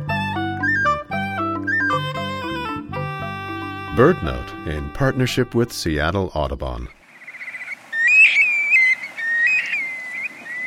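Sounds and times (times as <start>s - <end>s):
juvenile Black-bellied Plover whistled calls: 0.4s - 2.6s, 7.1s - 10.6s
speech: 4.0s - 7.0s.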